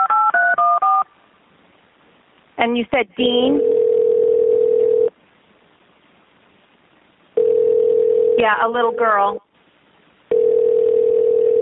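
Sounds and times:
steady electronic phone ringback tone: 0.0s - 1.1s, 3.6s - 5.1s, 7.4s - 8.4s, 10.3s - 11.6s
speech: 2.6s - 4.0s, 8.4s - 9.5s.

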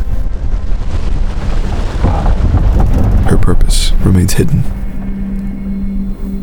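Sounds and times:
heavy waves pounding against the hull of a ship on the open sea: 0.0s - 5.4s
harsh rushing wind: 0.0s - 6.4s
speech: 3.3s - 4.8s.

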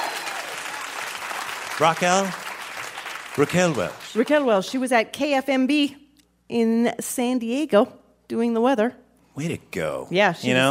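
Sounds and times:
audience applause: 0.0s - 4.4s
speech: 1.8s - 2.4s, 3.4s - 10.6s.

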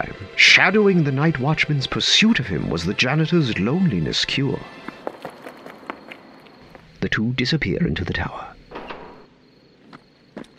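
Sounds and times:
speech: 0.0s - 4.8s, 7.0s - 8.5s
soft footsteps on a hard floor: 4.8s - 6.9s.

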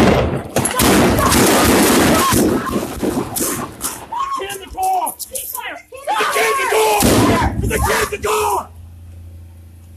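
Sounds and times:
gunshots fired during an armed standoff: 0.0s - 4.0s, 7.0s - 7.9s
continuous roar of loud noise: 0.0s - 9.9s.

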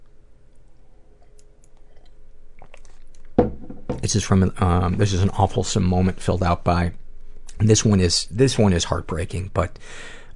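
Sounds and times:
steady hiss: 0.0s - 10.3s
person sipping tea: 0.6s - 3.2s
soft mouth and swallowing sounds: 0.9s - 3.1s
speech: 4.0s - 7.0s, 7.6s - 10.2s.

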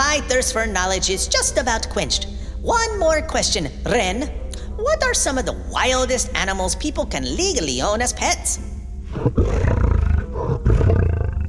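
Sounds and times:
speech: 0.2s - 9.8s
deep growling tiger roar: 9.1s - 11.4s.

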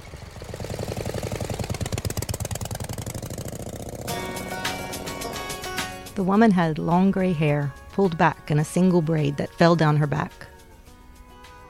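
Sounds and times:
motorcycle engine running in a park: 0.0s - 7.4s
speech: 6.2s - 10.5s.

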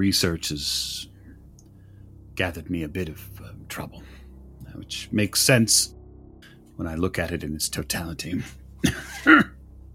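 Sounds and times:
speech: 0.0s - 1.1s, 2.4s - 6.0s, 6.8s - 9.5s
badly burned man's rough racking cough: 8.8s - 9.6s.

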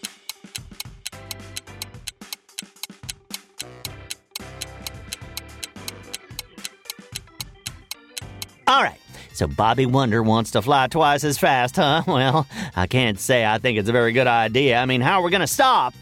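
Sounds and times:
tense tonal music bed: 0.0s - 8.7s
quiz-round countdown clock ticking: 0.0s - 8.8s
speech: 8.7s - 16.0s
laughter: 11.8s - 12.5s.

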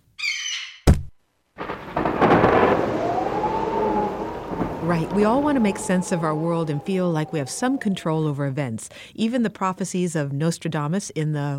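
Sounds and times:
sharp loud thunder crack: 1.6s - 8.9s
steady storm noise: 1.6s - 9.1s
speech: 4.9s - 11.5s.

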